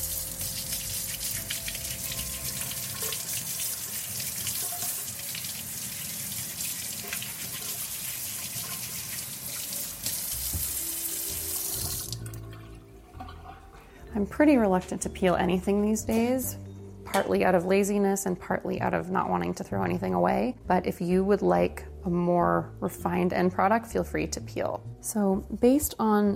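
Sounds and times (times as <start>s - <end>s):
tap water running into a sink while carrots are washed: 0.0s - 13.5s
speech: 14.2s - 16.6s, 17.2s - 26.3s.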